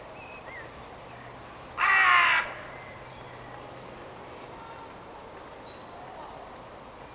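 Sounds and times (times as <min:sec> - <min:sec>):
carrion crow Corvus corone cawing: 0:01.8 - 0:02.7.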